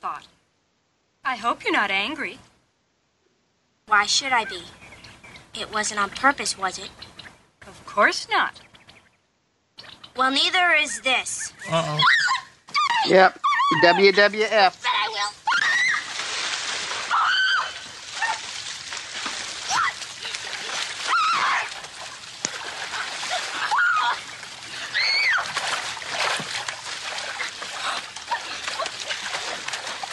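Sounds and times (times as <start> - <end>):
speech: 0.0 - 0.4, 1.2 - 2.5, 3.9 - 4.9, 5.6 - 8.7, 10.2 - 12.4, 13.0 - 14.9
splashing and sloshing in wet mud: 15.5 - 30.1.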